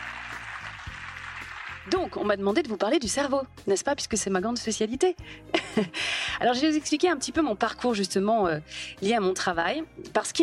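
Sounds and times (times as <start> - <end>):
large audience applause: 0.0 - 2.0
speech: 1.8 - 10.4
laughter: 5.6 - 6.0.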